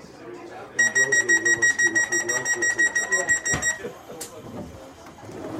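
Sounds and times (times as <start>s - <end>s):
rapid electronic door-warning beep of an electric train: 0.8s - 4.0s.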